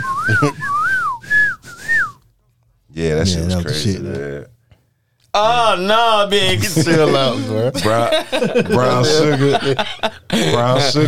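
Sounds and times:
laughter: 0.0 - 0.8, 6.4 - 11.0
person whistling a film whistle tune: 0.0 - 2.2
speech: 0.3 - 0.7, 3.0 - 4.6, 5.3 - 11.0.

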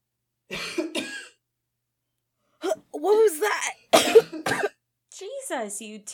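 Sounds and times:
person coughing harshly with a hand over the mouth: 0.5 - 1.4, 3.9 - 4.8
speech: 5.5 - 6.1.

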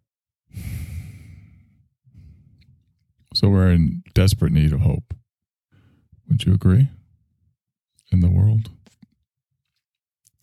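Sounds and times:
heavy dramatic breathing: 0.5 - 2.7
speech: 3.4 - 5.2, 6.3 - 7.0, 8.1 - 8.8.

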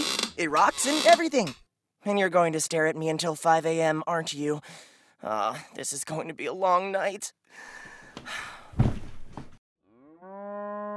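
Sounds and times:
speech: 0.4 - 8.9
cow mooing loudly: 9.9 - 10.9.

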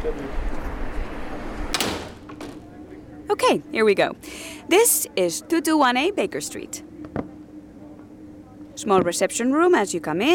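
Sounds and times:
speech: 0.0 - 0.5, 3.3 - 6.9, 8.8 - 10.3
low rumble of traffic from a busy street: 0.0 - 8.2
front door opening with a scrape and a knock: 1.6 - 3.0.

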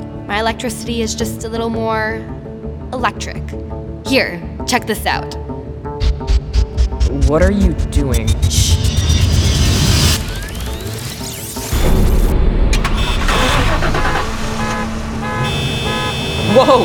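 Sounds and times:
speech: 0.3 - 5.5, 7.1 - 8.8, 16.5 - 16.8
many car engines starting and revving in a parking garage: 6.6 - 16.8
car horn toots: 12.8 - 16.8.

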